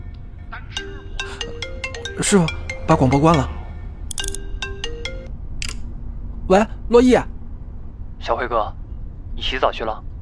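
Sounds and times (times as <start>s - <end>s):
mobile phone ringtone playing a short electronic melody: 0.6s - 5.3s
speech: 2.2s - 3.5s, 6.5s - 7.3s, 8.2s - 8.8s, 9.4s - 10.1s.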